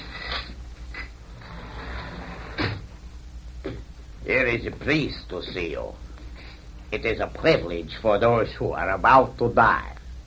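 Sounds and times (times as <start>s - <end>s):
low room hum: 0.0s - 10.2s
door opening: 1.0s - 2.9s
speech: 4.3s - 6.0s, 6.9s - 9.9s.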